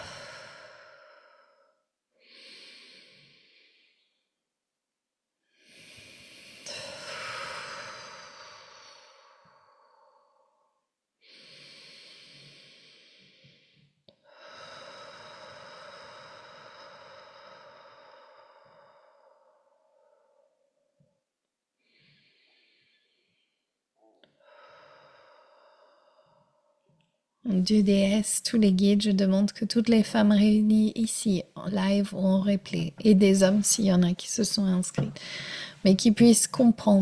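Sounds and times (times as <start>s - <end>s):
slow deep breaths during a guided meditation: 0.0s - 4.4s, 5.5s - 21.2s, 21.8s - 27.0s, 35.0s - 35.9s
speech: 27.4s - 37.0s.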